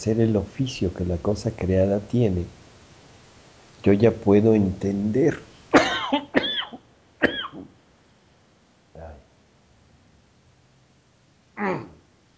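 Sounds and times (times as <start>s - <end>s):
speech: 0.0s - 2.6s, 3.8s - 5.5s
person coughing: 5.7s - 7.7s.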